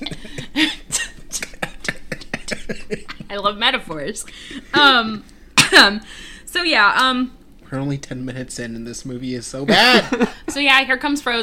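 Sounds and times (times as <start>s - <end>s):
person fake coughing as if coughing up a pill: 0.0s - 3.2s, 5.6s - 6.0s
laughter: 0.0s - 5.1s, 9.7s - 10.5s
speech: 0.6s - 0.8s, 3.3s - 11.4s.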